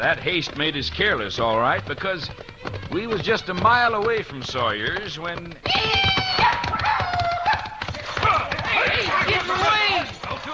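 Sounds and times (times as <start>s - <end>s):
speech: 0.0s - 5.9s
pounding hoofbeats of horses at full gallop: 0.0s - 10.5s
excited voices shouting: 5.6s - 10.5s.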